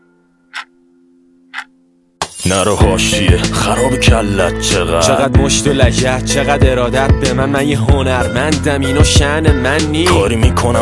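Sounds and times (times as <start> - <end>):
clock ticking: 0.5 - 0.7, 1.5 - 1.7
speech: 2.4 - 10.8.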